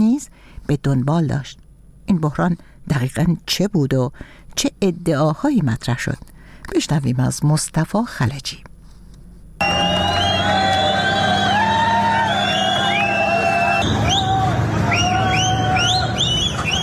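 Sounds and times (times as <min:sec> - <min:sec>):
speech: 0:00.1 - 0:08.7
large crowd of migrants shouting: 0:09.6 - 0:16.8
sharp rising whistles from a large crowd of migrants: 0:09.6 - 0:16.8.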